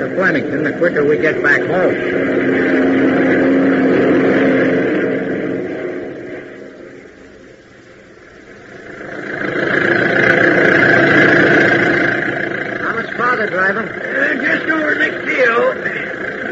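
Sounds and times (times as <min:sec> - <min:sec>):
speech: 0:00.0 - 0:03.2
voices murmuring: 0:00.0 - 0:05.2, 0:08.5 - 0:16.5
engine of a 20-year-old car straining up a hill: 0:00.0 - 0:16.5.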